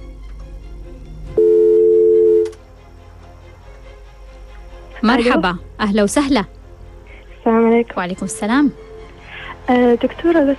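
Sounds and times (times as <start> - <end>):
telephone line tone as a phone call connects: 1.4 - 2.6
speech: 5.0 - 6.6, 7.4 - 8.9, 9.7 - 10.5.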